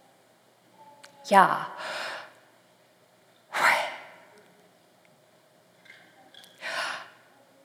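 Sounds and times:
speech: 1.3s - 2.0s
person breathing in and out imitating a name: 1.8s - 2.4s, 6.6s - 7.2s.

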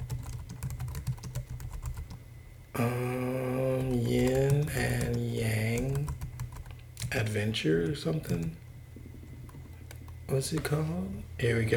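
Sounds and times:
typing on a computer keyboard: 0.0s - 2.2s, 3.8s - 5.2s, 5.8s - 7.1s
steady tonal hum with bright harmonics: 0.0s - 11.7s
speech: 2.8s - 3.1s, 7.3s - 8.6s, 10.3s - 11.7s.

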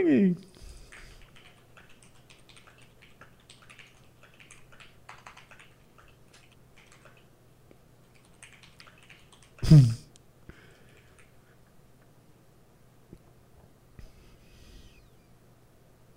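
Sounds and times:
speech: 0.0s - 0.5s, 9.6s - 10.0s
steady low hum: 0.0s - 16.1s
fingers typing on a computer keyboard: 1.2s - 7.2s, 8.0s - 9.6s.

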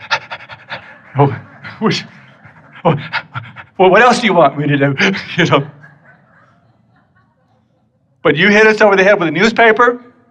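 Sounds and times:
person imitating a happy dog panting: 0.0s - 3.8s
laughter: 0.0s - 8.6s
speech: 1.2s - 2.2s, 2.8s - 5.8s, 8.2s - 10.1s.

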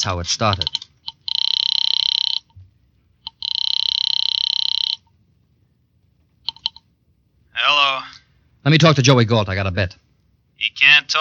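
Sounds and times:
speech: 0.0s - 0.8s, 8.7s - 10.0s, 10.6s - 11.1s
telephone line ringing: 0.4s - 2.6s, 3.2s - 5.1s, 6.5s - 6.8s.

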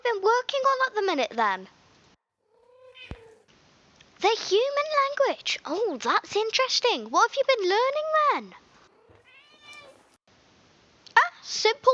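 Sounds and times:
speech: 0.2s - 1.8s, 4.2s - 8.6s, 11.4s - 11.9s
cat meowing: 2.4s - 3.5s, 8.8s - 10.2s.

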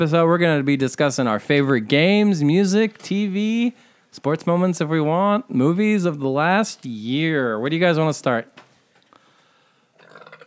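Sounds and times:
speech: 0.0s - 8.6s
burp: 10.0s - 10.4s.

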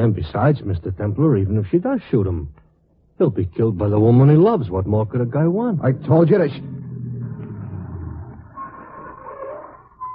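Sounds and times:
speech: 0.0s - 2.6s, 3.2s - 6.8s
car engine rumbling outside as the vehicle approaches: 3.9s - 8.6s.

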